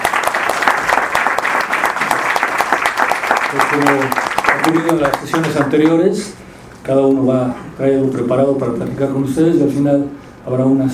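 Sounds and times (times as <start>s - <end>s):
live audience applause at a music talk session: 0.0s - 6.0s
speech: 3.5s - 10.9s.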